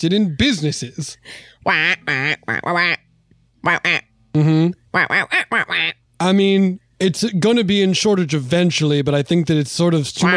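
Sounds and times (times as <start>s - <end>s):
speech: 0.0s - 3.0s, 3.6s - 10.3s
person imitating duck quacks: 1.7s - 3.0s, 3.6s - 6.0s.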